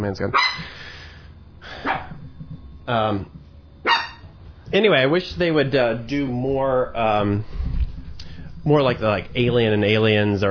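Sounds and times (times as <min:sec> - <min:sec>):
speech: 0:00.0 - 0:00.8, 0:02.9 - 0:03.4, 0:04.7 - 0:07.6, 0:08.6 - 0:10.5
dog barking at the mailman: 0:00.3 - 0:00.7, 0:01.8 - 0:02.2, 0:03.8 - 0:04.2.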